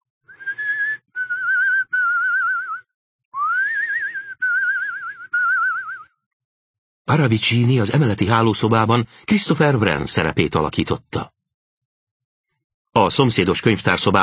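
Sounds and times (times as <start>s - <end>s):
tune whistled very faintly from upstairs: 0.3s - 6.3s
speech: 7.1s - 11.4s, 13.0s - 14.2s.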